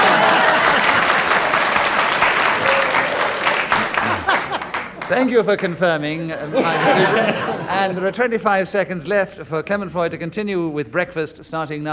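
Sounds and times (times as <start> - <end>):
laughter: 0.0 - 5.4, 6.1 - 8.3
audience clapping in a room full of people: 0.0 - 5.7
speech: 5.1 - 11.9.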